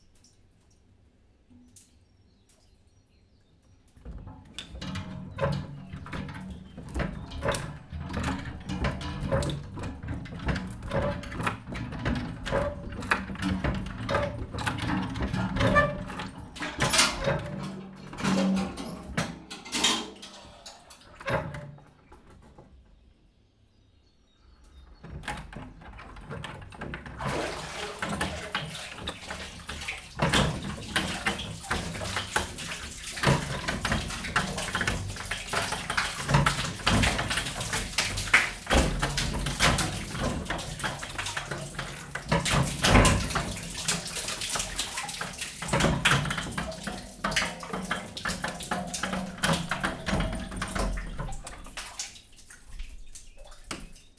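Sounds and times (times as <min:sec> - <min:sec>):
water slowly drawn from a closed-top wheel well: 0:04.1 - 0:22.5, 0:25.1 - 0:54.1.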